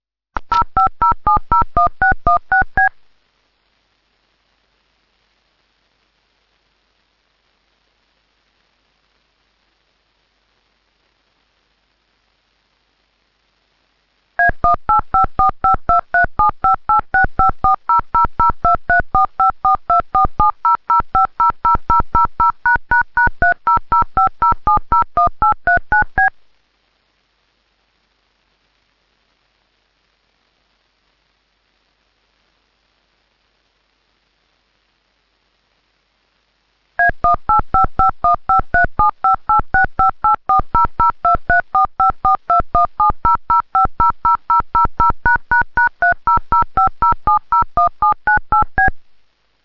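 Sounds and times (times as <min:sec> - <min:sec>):
DTMF dial tones: 0:00.5 - 0:03.0, 0:14.4 - 0:26.3, 0:37.0 - 0:48.9.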